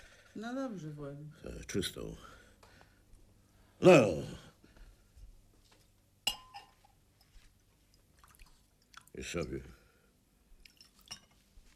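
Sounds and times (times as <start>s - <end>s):
speech: 0.4s - 2.3s, 3.8s - 4.4s, 9.2s - 9.8s
glasses clinking as vodka is served: 6.2s - 7.3s.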